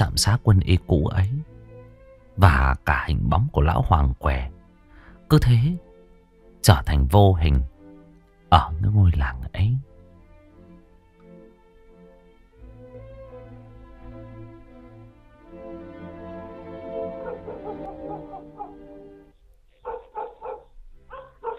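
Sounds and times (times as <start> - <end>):
speech: 0.0 - 1.4, 2.4 - 4.6, 5.3 - 5.8, 6.6 - 7.7, 8.5 - 9.9
dog barking at night by the porch of a village house: 17.0 - 19.0, 19.8 - 21.5.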